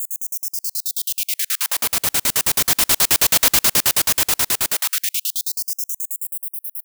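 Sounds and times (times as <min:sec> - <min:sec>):
dubstep effect loops: 0:01.7 - 0:04.9.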